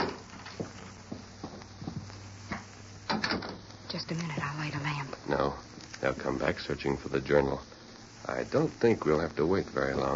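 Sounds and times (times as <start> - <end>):
two people's footsteps crunching from a ranch corral toward a house: 0.5 - 2.7
speech: 4.0 - 7.7, 8.3 - 10.1.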